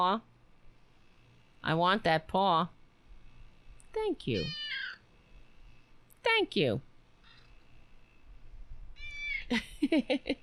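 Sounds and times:
speech: 0.0s - 0.3s, 1.6s - 2.8s, 3.9s - 4.6s, 6.2s - 6.9s, 9.5s - 10.4s
cat meowing: 4.4s - 5.0s, 9.0s - 9.5s.

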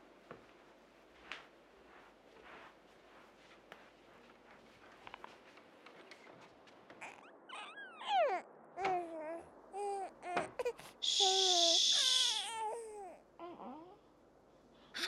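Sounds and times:
baby crying and babbling: 7.0s - 14.0s
speech: 10.7s - 11.4s.

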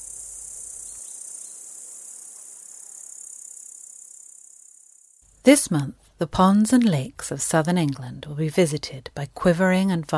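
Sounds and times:
insect stridulation mating call made by rubbing leg pegs against forewings: 0.0s - 5.3s
speech: 5.4s - 10.1s.

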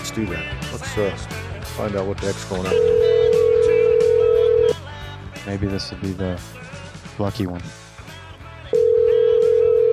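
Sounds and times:
speech: 0.2s - 3.1s, 5.5s - 6.6s, 7.2s - 7.8s
telephone dial tone for a phone call: 2.8s - 4.7s, 8.8s - 9.9s.

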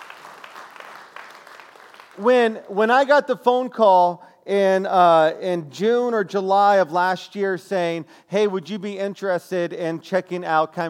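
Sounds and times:
church congregation clapping: 0.0s - 3.2s
speech: 2.2s - 10.8s.

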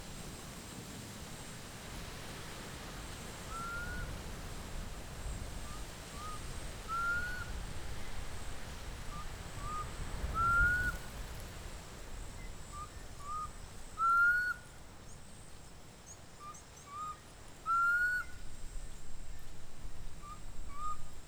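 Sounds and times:
faint high insect hiss: 0.0s - 21.2s
bird repeating a rising whistle in Mmabolela Reserve in Limpopo South Africa: 6.2s - 7.5s, 9.6s - 11.0s, 12.8s - 14.6s, 16.4s - 18.3s.

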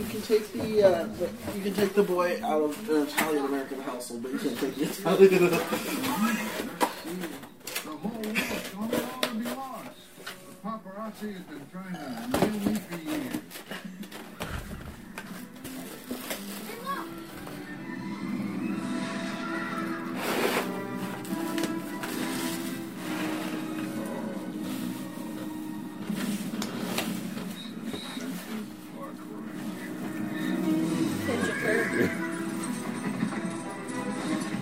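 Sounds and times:
speech: 0.0s - 7.4s, 11.1s - 13.8s
busy noisy noise: 0.0s - 34.6s
horse whinnying: 30.3s - 32.6s.

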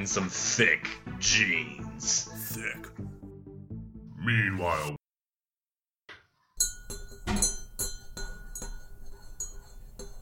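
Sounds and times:
speech: 0.0s - 3.1s, 4.2s - 5.0s
spoon clinking against a cup while stirring tea with honey: 6.6s - 10.2s.

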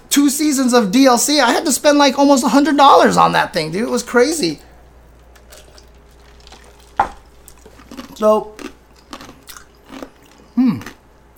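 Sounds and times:
speech: 0.3s - 4.7s, 8.2s - 8.6s
crunching ice cubes between teeth: 5.5s - 11.3s.

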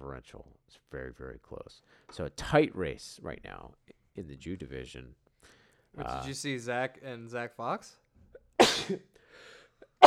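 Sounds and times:
speech: 0.0s - 8.0s, 8.6s - 10.0s
loud sneeze: 8.6s - 9.0s.

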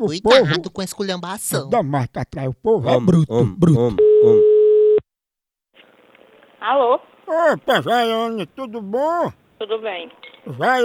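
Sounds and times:
speech: 0.0s - 4.5s, 6.6s - 10.8s
telephone line beep while placing a call: 4.0s - 5.0s.

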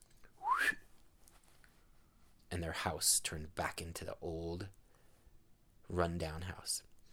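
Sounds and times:
short human whistle rising in pitch: 0.4s - 0.9s
speech: 2.6s - 4.8s, 5.9s - 6.9s.

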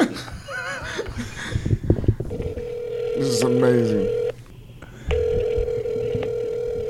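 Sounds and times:
laughter: 0.0s - 1.7s
low hum: 0.0s - 6.8s
steady electronic phone tone of an outgoing call: 2.3s - 4.3s, 5.1s - 6.8s
speech: 3.2s - 4.2s.

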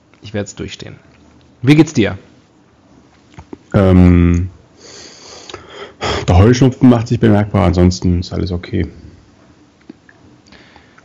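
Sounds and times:
speech: 0.2s - 2.3s, 3.7s - 4.5s, 6.3s - 9.0s
soft wet lip smacks and small mouth clicks: 9.8s - 11.0s.

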